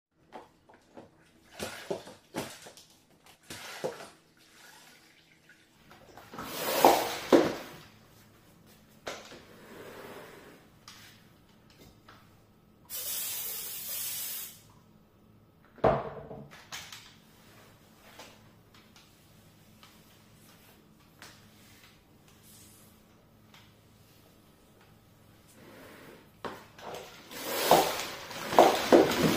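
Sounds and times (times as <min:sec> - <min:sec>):
mop: 0:00.3 - 0:05.0, 0:05.9 - 0:11.3, 0:17.3 - 0:29.3.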